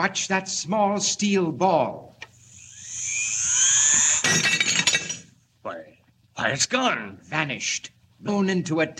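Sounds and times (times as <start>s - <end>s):
speech: 0.0s - 2.2s, 6.4s - 8.9s
shrill rising electronic whine: 2.5s - 4.3s
glass on the edge of a table shattering: 4.2s - 5.3s.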